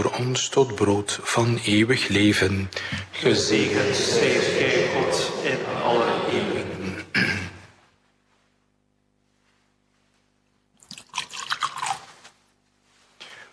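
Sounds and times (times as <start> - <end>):
speech: 0.0 - 5.3
laughter: 3.1 - 7.7
water poured into a chalice of wine during a liturgical blessing: 10.8 - 12.2.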